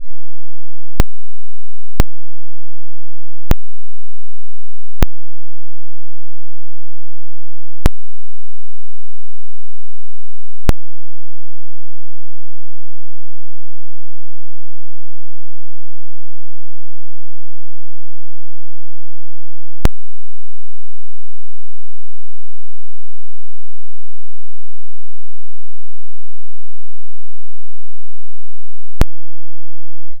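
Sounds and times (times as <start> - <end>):
very low-frequency square wave: 0.0 - 30.1.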